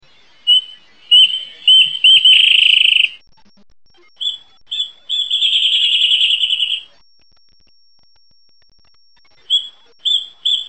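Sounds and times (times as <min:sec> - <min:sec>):
wren song with staccato ringing notes running into a trill: 0:00.5 - 0:03.2, 0:04.2 - 0:06.9, 0:09.5 - 0:10.6.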